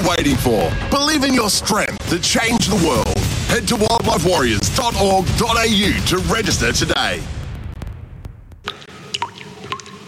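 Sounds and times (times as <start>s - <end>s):
speech: 0.0s - 7.4s
water dripping from a leaky bathroom tap: 8.7s - 10.0s.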